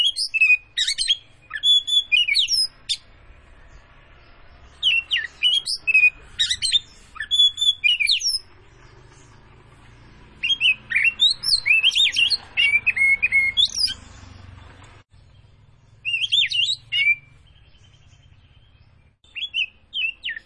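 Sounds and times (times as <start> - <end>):
Oriental magpie-robin of the Tretes form singing vigorously with whistled phrases: 0.0 - 3.1, 4.8 - 8.6, 10.4 - 14.2, 16.0 - 20.4.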